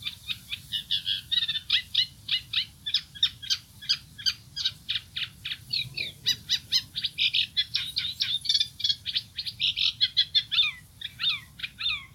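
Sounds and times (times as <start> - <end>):
Sedge warbler singing: 0.0 - 12.1.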